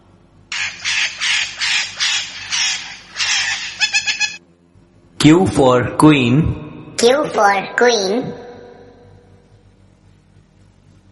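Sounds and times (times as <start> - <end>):
parrot squawking: 0.5 - 4.4
speech: 5.2 - 8.4.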